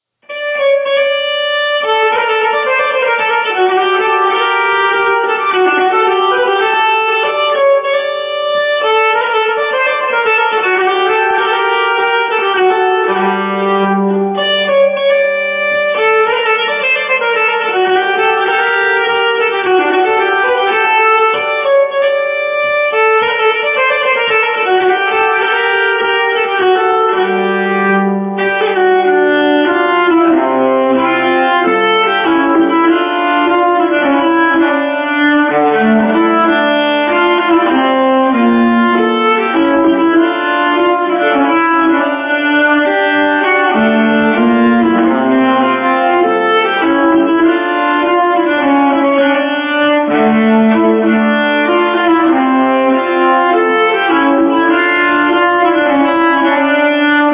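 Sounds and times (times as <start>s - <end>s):
nyckelharpa playing a polska from Dalarna: 0.0s - 57.3s.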